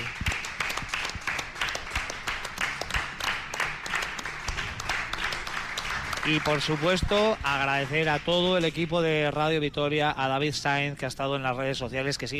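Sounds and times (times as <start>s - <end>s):
audience applauding in a hotel: 0.0s - 9.4s
speech: 6.3s - 12.3s.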